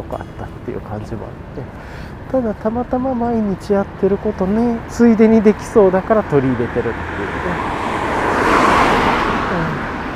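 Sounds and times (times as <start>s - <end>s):
speech: 0.0s - 7.7s
car passing by: 6.2s - 10.1s.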